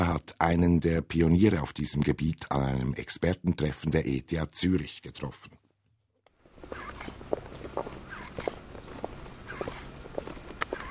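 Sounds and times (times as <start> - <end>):
speech: 0.2 - 5.6
soft steady footsteps of a man walking on two robotic leg prostheses: 6.3 - 10.8
squeaking whining motors of robotic leg prostheses: 6.6 - 7.2, 7.8 - 10.8.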